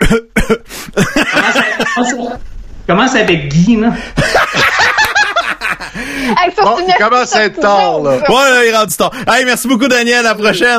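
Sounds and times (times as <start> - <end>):
person coughing: 0.0 - 1.1
speech: 0.1 - 1.2, 2.0 - 4.7, 6.2 - 10.7
laughter: 1.0 - 2.4, 4.2 - 6.9.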